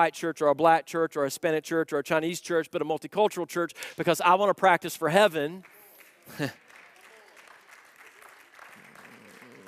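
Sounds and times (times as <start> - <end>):
speech: 0.0 - 6.6
large church audience clapping: 5.1 - 9.6.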